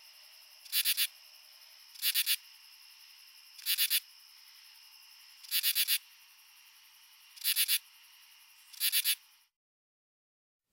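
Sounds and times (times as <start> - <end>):
male Pteryphylla camellifolia common true katydid rasping: 0.5 - 6.2, 7.3 - 7.9, 8.6 - 9.2.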